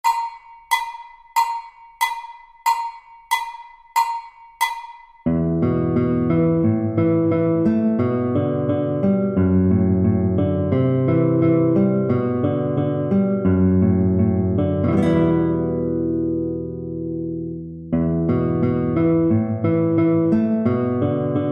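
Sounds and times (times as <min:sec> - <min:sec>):
guitar B string accompaniment: 0:00.0 - 0:21.4.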